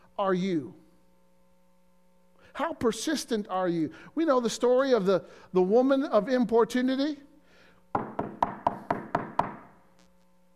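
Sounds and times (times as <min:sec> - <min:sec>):
speech: 0:00.2 - 0:00.8, 0:02.6 - 0:07.3
firm knocking on a wooden door: 0:08.0 - 0:09.7.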